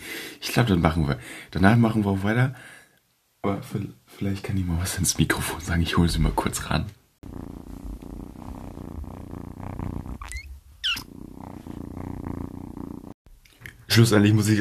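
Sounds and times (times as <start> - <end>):
speech: 0.5 - 2.8, 3.4 - 7.5, 14.0 - 14.5
cat purring: 7.2 - 13.2
cat meowing: 10.2 - 11.1.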